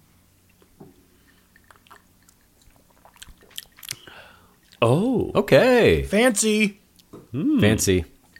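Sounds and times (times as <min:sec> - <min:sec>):
person sipping a cocktail: 0:00.6 - 0:04.8
speech: 0:04.8 - 0:08.1.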